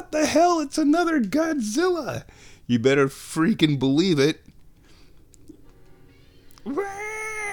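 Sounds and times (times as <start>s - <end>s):
speech: 0.1s - 4.4s
cat meowing: 6.6s - 7.5s.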